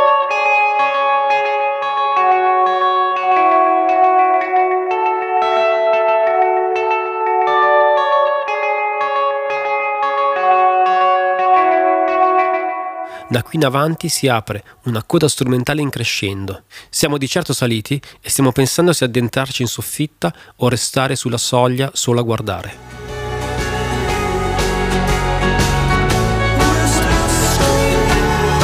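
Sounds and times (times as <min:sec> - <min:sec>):
clean electric guitar arpeggio with shimmering effects, echo and reverb: 0:00.0 - 0:14.4, 0:22.8 - 0:28.6
speech: 0:13.3 - 0:23.0.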